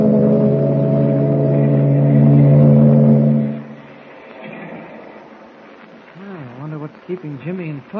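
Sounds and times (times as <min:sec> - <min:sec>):
ship engine droning as the ship pulls out of the harbor: 0:00.0 - 0:05.8
speech: 0:07.3 - 0:07.9.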